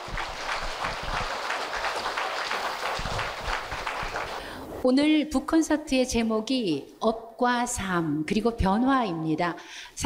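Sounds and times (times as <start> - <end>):
audience applause welcoming a speaker: 0.0 - 4.5
speech: 4.8 - 10.0.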